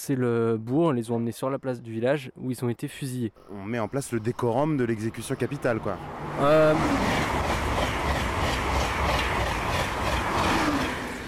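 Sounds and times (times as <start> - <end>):
speech: 0.0 - 7.4
high-speed TGV train speeding through a village: 4.8 - 11.2.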